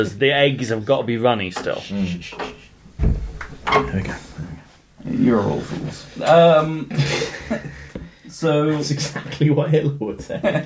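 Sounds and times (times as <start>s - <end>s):
speech: 0.0s - 4.3s, 5.1s - 7.7s, 8.4s - 10.6s
door thudding shut: 2.9s - 4.0s
laughter: 6.8s - 8.0s, 10.2s - 10.6s.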